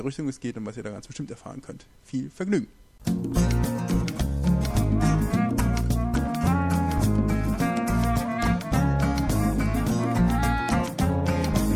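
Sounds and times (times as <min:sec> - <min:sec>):
speech: 0:00.0 - 0:04.0
song with full band sound: 0:03.1 - 0:11.7.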